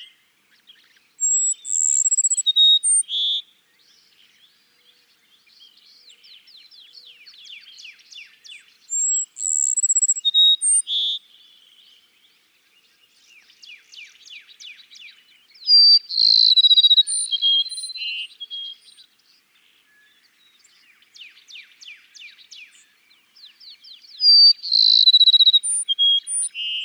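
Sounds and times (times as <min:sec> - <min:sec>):
Cassin's sparrow singing a high trill and whistled ending: 0:01.2 - 0:03.4, 0:08.9 - 0:11.2, 0:15.6 - 0:19.0, 0:24.1 - 0:26.8.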